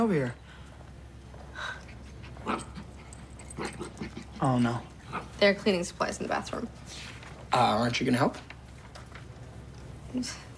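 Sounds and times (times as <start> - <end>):
speech: 0.0 - 0.4, 4.4 - 8.5, 10.1 - 10.5
dog panting in a hospital: 1.5 - 5.7.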